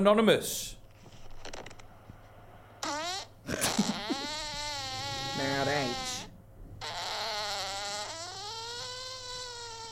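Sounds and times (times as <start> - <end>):
speech: 0.0 - 0.8, 3.5 - 3.8, 5.4 - 6.1
faint noise: 0.0 - 9.9
long loud recorded fart with wavering pitch: 2.8 - 9.9.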